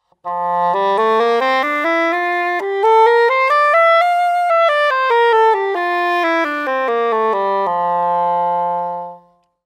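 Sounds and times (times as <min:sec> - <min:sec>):
cor anglais playing: 0:00.0 - 0:09.4.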